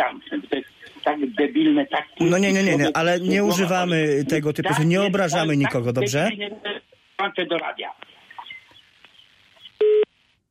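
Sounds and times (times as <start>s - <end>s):
speech: 0.0s - 8.1s
phone line beep after a dropped call: 9.8s - 10.1s.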